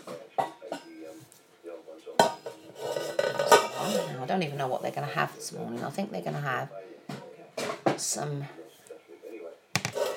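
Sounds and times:
dishes clattering as they are taken out: 0:00.0 - 0:01.1, 0:02.2 - 0:04.2, 0:07.1 - 0:08.0, 0:09.8 - 0:10.1
speech: 0:04.3 - 0:06.8, 0:08.0 - 0:08.6.

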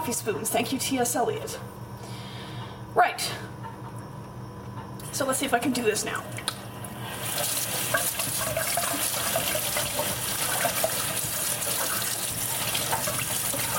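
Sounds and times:
speech: 0:00.1 - 0:02.1, 0:02.9 - 0:03.5, 0:05.2 - 0:06.5
water running from a small sink tap for washing hair: 0:06.4 - 0:13.7.

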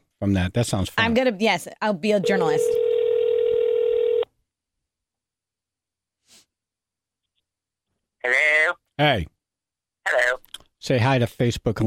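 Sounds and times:
speech: 0:00.2 - 0:02.8, 0:08.2 - 0:09.4, 0:10.8 - 0:11.8
single-pitch telephone tone of a call placed on speakerphone: 0:02.3 - 0:04.2.

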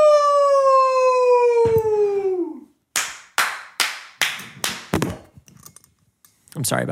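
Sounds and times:
long falling whoop of a voice: 0:00.0 - 0:02.7
loud sharp hand claps with tail: 0:02.9 - 0:05.3
microphone falling over: 0:04.9 - 0:05.4.

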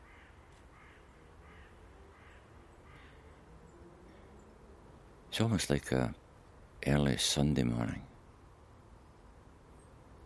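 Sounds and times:
blackbirds giving harsh scolding calls while chasing each other: 0:00.0 - 0:04.8
speech: 0:05.4 - 0:06.2, 0:06.8 - 0:08.1.

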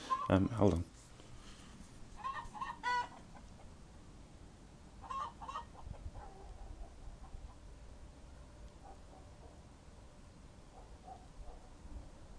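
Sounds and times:
chickens clucking and squawking in a coop: 0:00.0 - 0:00.4, 0:02.1 - 0:03.9, 0:05.0 - 0:07.7
speech: 0:00.3 - 0:00.9.

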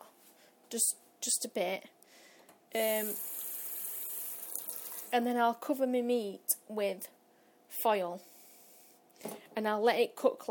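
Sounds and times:
speech: 0:00.7 - 0:02.0, 0:02.7 - 0:03.4, 0:05.1 - 0:07.2, 0:07.8 - 0:08.3, 0:09.2 - 0:10.4
water poured into a metal roasting tray holding pork: 0:03.1 - 0:05.1.

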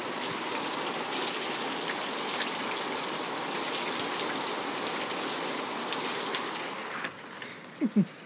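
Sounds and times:
steady rain falling outside an open door: 0:00.0 - 0:08.2.

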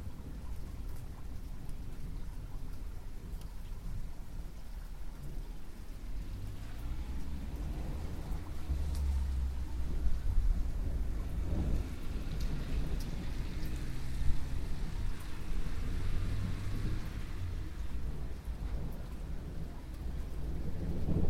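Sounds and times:
steady rain pattering: 0:00.0 - 0:21.2
deep thunder rumbling: 0:06.8 - 0:21.2.

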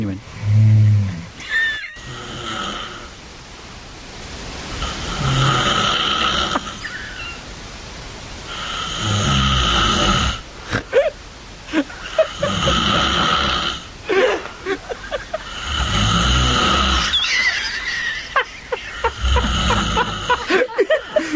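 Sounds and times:
loud rough human snoring during sleep: 0:00.4 - 0:01.3, 0:02.1 - 0:03.1, 0:04.8 - 0:06.8, 0:08.5 - 0:10.8, 0:12.2 - 0:13.9, 0:15.4 - 0:17.2, 0:19.1 - 0:20.6
laughter: 0:01.4 - 0:02.0, 0:06.5 - 0:07.4, 0:10.9 - 0:13.3, 0:14.1 - 0:15.5, 0:17.0 - 0:21.3.

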